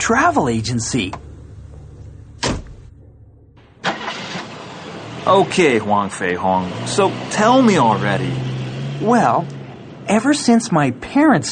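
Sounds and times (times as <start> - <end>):
speech: 0.0 - 1.2, 5.3 - 11.4
car engine starting and idling: 0.0 - 11.4
car door thudding shut: 2.4 - 2.9.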